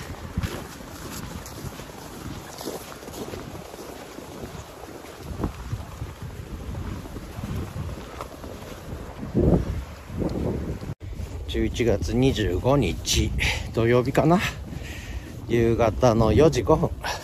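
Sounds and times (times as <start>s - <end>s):
river flowing: 0.0s - 11.0s
footsteps crunching through fresh snow on a riverbank: 0.0s - 17.2s
speech: 11.6s - 14.6s, 15.5s - 17.2s.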